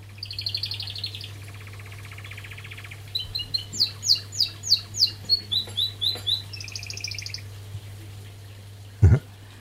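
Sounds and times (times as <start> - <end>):
birds chirping and trilling: 0.0 - 9.0
steady low hum: 0.0 - 9.6
bird singing on a hill above a huge reservoir in Ulze: 0.2 - 7.5.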